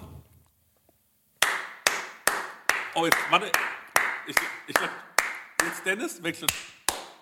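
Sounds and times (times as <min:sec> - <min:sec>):
loud hand clapping: 0:01.4 - 0:07.1
speech: 0:03.0 - 0:06.7.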